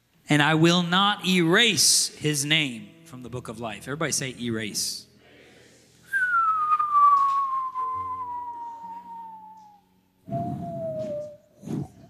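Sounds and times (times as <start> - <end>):
speech: 0.3 - 5.1
person whistling: 6.1 - 12.0
puff of breath: 10.3 - 12.0.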